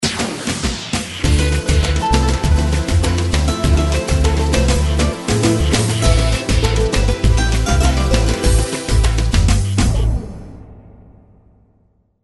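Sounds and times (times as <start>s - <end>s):
Latin ethnic music: 1.2s - 10.0s.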